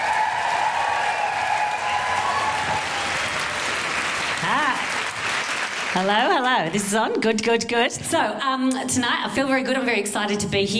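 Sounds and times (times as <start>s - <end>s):
audience at a live International Women's Day event cheering and whooping: 0.0s - 5.7s
audience at a live International Women's Day event applauding: 0.0s - 6.7s
speech: 6.0s - 10.7s.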